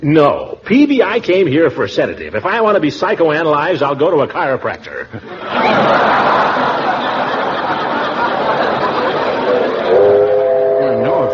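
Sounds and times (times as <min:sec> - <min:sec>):
speech: 0:00.0 - 0:06.4
laughter: 0:05.0 - 0:11.3
train whistle or horn: 0:09.9 - 0:11.3.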